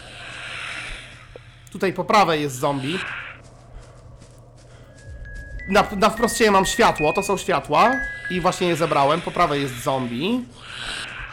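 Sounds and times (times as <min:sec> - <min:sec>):
low ambient hum: 0:00.0 - 0:11.3
speech: 0:01.7 - 0:03.2, 0:05.7 - 0:10.9
running footsteps of a video game character: 0:03.0 - 0:09.7
faint tone: 0:04.9 - 0:09.8
short bright chime: 0:05.0 - 0:08.9.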